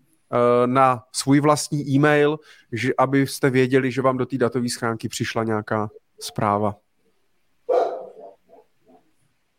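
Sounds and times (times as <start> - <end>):
speech: 0.3 - 6.8
dog bark trailing into a yowl: 7.7 - 9.1.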